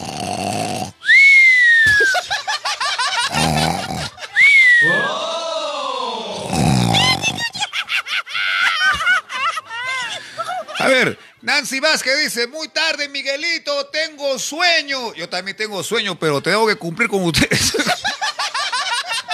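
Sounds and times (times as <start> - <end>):
exaggerated cartoon-style snoring of a sleeping person: 0.0 - 1.1, 3.2 - 4.2, 6.2 - 7.6
laughter: 1.8 - 5.4, 6.9 - 11.3, 17.4 - 19.3
speech: 11.8 - 18.3.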